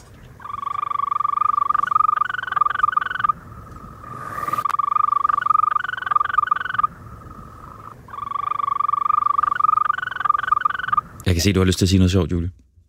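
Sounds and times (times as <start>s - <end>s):
European green toad calling in high-pitched trills: 0.4s - 11.4s
speech: 11.4s - 12.6s.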